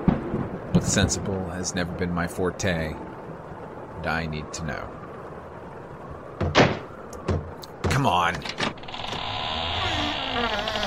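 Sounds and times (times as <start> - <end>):
speech: 0.8 - 3.1, 4.0 - 5.0, 8.0 - 8.8, 10.3 - 10.8
tight-fitting door being shoved open: 6.4 - 10.8.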